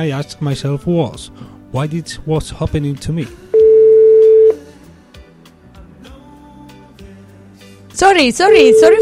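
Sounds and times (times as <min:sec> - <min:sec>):
speech: 0:00.0 - 0:03.4, 0:08.0 - 0:09.0
telephone line tone of a call not connecting: 0:03.6 - 0:04.6, 0:08.5 - 0:09.0.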